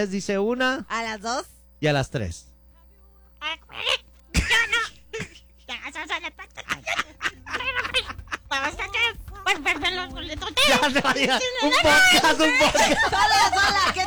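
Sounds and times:
speech: 0.0 - 2.5, 9.5 - 14.0
person imitating a cartoon duck in a raspy quacking voice: 3.4 - 4.1
laughter: 3.6 - 14.0.

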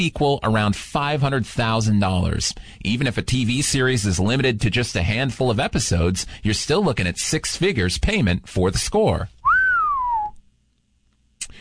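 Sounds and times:
speech: 0.0 - 9.4
person whistling downward in place of a sound effect: 9.4 - 10.4.

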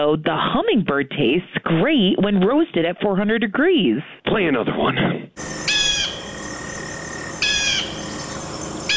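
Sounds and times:
speech: 0.0 - 5.6
bald eagle calling with high shrill piping whistles: 5.4 - 8.9.

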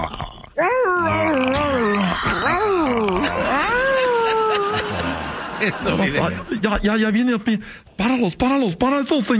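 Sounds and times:
person imitating a dog whimpering in pain: 0.0 - 4.9
laughter: 2.1 - 6.9
speech: 5.6 - 9.3.

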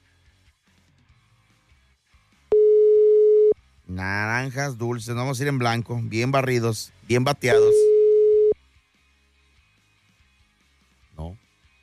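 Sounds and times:
short steady telephone line tone: 2.5 - 3.6, 7.5 - 8.6
speech: 4.0 - 7.9.

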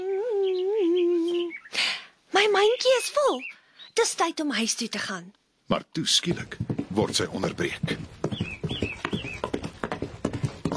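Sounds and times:
bird chirping: 0.2 - 4.4, 6.4 - 10.5
speech: 2.5 - 8.1
horse hooves clip-clopping: 6.0 - 10.7.

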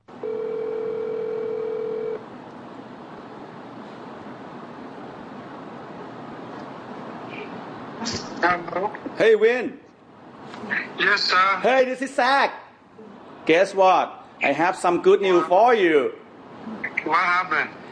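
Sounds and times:
continuous hiss of telephone line noise: 0.0 - 17.8
telephone dialing and ringing tone: 0.1 - 2.2
speech: 8.0 - 9.8, 11.0 - 12.6, 13.5 - 16.2, 17.1 - 17.8.

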